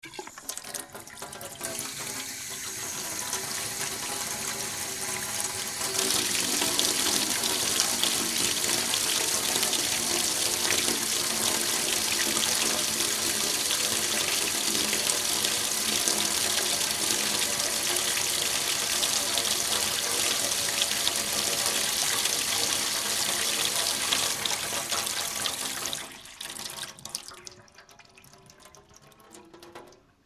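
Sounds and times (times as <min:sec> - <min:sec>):
water tap running: 0:00.0 - 0:27.4.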